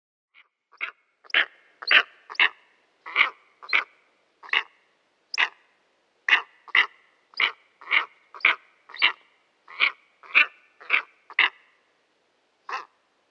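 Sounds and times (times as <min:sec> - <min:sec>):
steppe eagle giving harsh barking calls: 0:00.7 - 0:04.7, 0:05.3 - 0:05.6, 0:06.3 - 0:11.6, 0:12.7 - 0:13.0.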